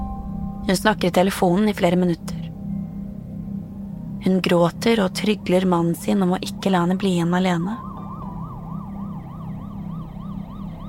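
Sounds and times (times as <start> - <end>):
low steady rumble: 0.0 - 10.8
speech: 0.7 - 2.4, 4.2 - 7.9
ambulance siren wailing: 7.6 - 10.8.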